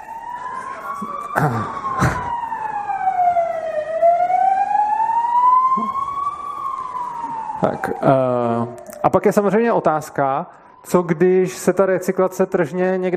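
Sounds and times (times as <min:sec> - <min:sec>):
ambulance siren wailing as it drives past: 0:00.0 - 0:13.1
steady traffic rumble: 0:00.0 - 0:13.1
speech: 0:01.0 - 0:02.2, 0:08.0 - 0:13.1.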